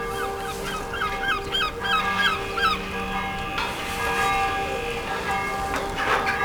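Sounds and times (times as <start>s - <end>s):
birds chirping and twittering: 0.0s - 6.4s
church bell of Mont Saint-Michel in Manche ringing: 0.0s - 6.4s.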